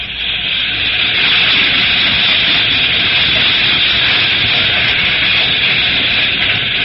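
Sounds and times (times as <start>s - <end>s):
loud steady rumbling and hissing of freight train: 0.0s - 6.8s
slow freight train rolling past: 0.0s - 6.8s.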